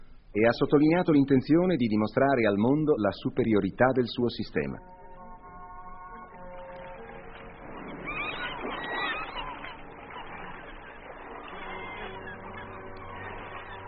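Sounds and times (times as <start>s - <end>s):
steady wash of noise: 0.0s - 13.8s
speech: 0.4s - 5.0s
seagulls squawking and crying over a beach: 6.1s - 13.8s.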